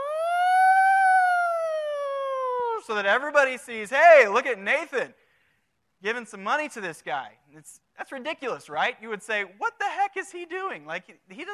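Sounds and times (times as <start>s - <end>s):
megaphone siren setting electronic wail: 0.0s - 2.7s
speech: 2.8s - 5.2s, 6.0s - 11.5s.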